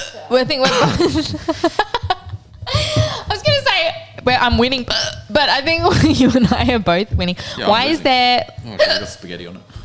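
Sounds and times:
person making vocal sounds: 0.0s - 9.8s
laughter: 0.2s - 9.8s
speech: 0.3s - 2.0s, 4.2s - 9.7s
person hiccuping: 4.9s - 5.3s, 8.8s - 9.3s.

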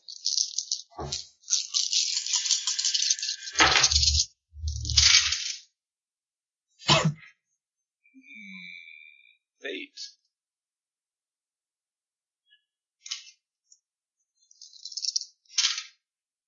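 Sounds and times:
dice rattling during a tabletop game: 0.0s - 5.6s, 14.5s - 15.9s
speech: 1.0s - 1.3s.

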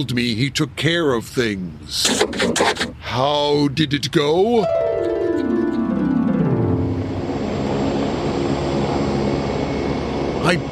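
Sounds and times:
speech: 0.0s - 4.8s, 10.5s - 10.7s
helicopter flying past: 4.9s - 10.7s.

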